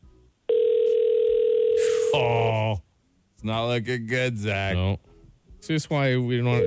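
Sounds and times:
telephone line ringing tone, call unanswered: 0.5s - 1.9s
speech: 3.4s - 6.6s.

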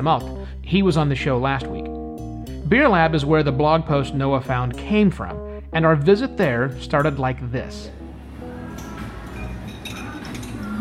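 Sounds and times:
speech: 0.0s - 1.8s, 2.7s - 8.0s
faint voices murmuring: 8.4s - 10.8s
beer tasting glasses clinking: 8.7s - 10.8s.

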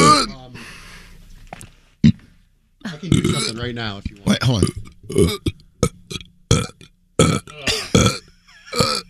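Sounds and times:
person burping: 0.0s - 0.4s, 2.9s - 3.7s, 4.3s - 9.0s
speech: 3.0s - 5.6s.

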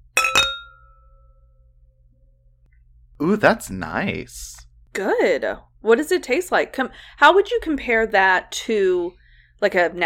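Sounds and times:
wine glasses clinking in a toast: 0.1s - 1.1s
speech: 3.2s - 10.0s.

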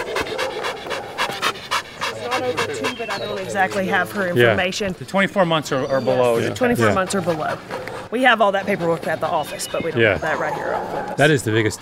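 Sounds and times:
Belgian Malinois dog panting: 0.0s - 4.9s, 6.2s - 11.2s
speech: 2.4s - 11.8s.

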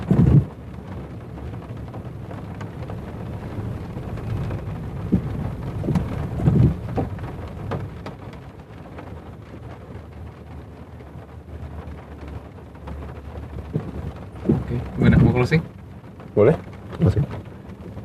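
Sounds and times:
low rumbling, possibly thunder or passing traffic: 0.0s - 9.5s, 10.1s - 18.0s
steady rain falling: 0.0s - 18.0s.

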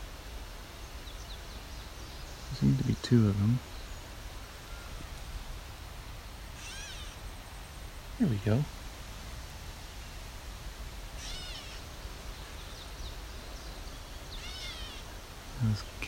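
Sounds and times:
steady outdoor hiss: 0.0s - 16.0s
gray catbird mewing calls: 6.4s - 7.5s, 11.0s - 15.5s.

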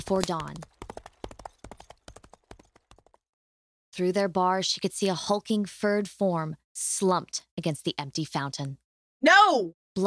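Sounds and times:
horse hooves clip-clopping as a rider travels: 0.0s - 3.2s
speech: 0.1s - 0.7s, 4.0s - 10.0s.

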